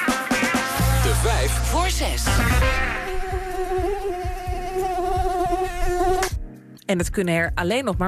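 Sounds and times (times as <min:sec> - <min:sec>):
mosquito buzzing: 0:00.7 - 0:06.4
speech: 0:06.9 - 0:08.0.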